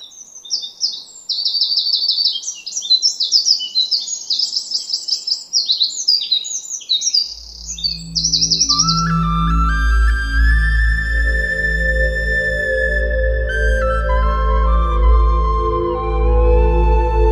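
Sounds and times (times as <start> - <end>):
Eurasian wren singing loudly: 0.0 - 13.0
low rumbling noise: 7.5 - 17.3.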